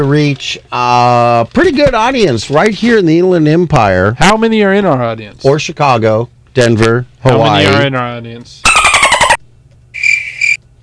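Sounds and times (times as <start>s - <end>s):
speech: 0.0s - 8.8s
lone cricket chirping: 10.0s - 10.6s.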